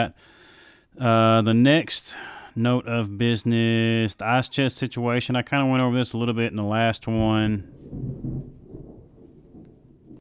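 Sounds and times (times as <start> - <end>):
speech: 0.0 - 0.4, 1.0 - 8.3
thunder rumbling from a passing thunderstorm: 7.0 - 10.1.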